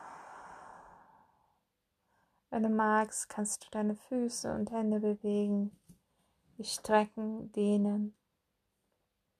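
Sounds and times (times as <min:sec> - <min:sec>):
long deep exhale during a guided relaxation exercise: 0:00.0 - 0:01.4
speech: 0:02.6 - 0:05.8, 0:06.6 - 0:08.2.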